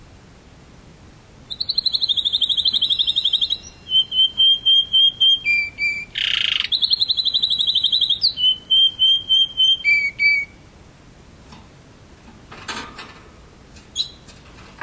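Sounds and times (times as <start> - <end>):
canary singing: 1.5 - 10.6, 13.9 - 14.3.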